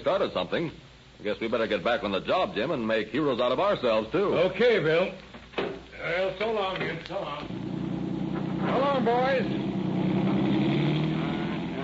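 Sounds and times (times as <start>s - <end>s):
speech: 0.0s - 5.3s, 6.0s - 7.6s, 8.7s - 10.1s
police car engine accelerating away: 7.5s - 11.8s.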